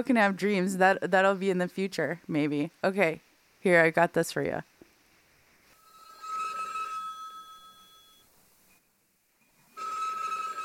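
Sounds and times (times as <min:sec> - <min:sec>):
speech: 0:00.0 - 0:04.7
telephone ringing with an incoming call: 0:05.8 - 0:08.3, 0:09.7 - 0:10.6.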